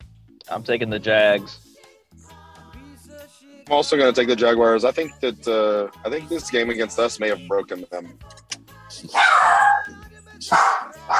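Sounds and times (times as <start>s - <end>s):
speech: 0.5s - 1.7s, 3.7s - 11.1s
dog barking: 9.1s - 11.1s.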